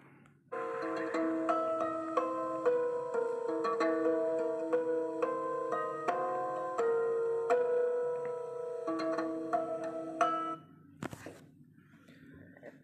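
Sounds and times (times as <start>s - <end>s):
plucked lyre strings slightly out of tune: 0.6s - 10.6s.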